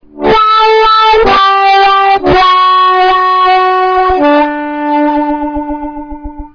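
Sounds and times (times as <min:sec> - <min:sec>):
hand wah effect: 0:00.2 - 0:06.5.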